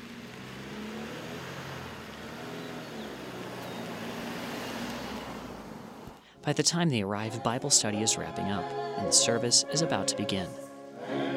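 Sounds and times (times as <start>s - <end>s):
continuous rush of tire and road noise: 0.0s - 6.2s
car engine humming low on a road trip north to Bedford: 0.0s - 11.1s
speech: 6.4s - 11.2s.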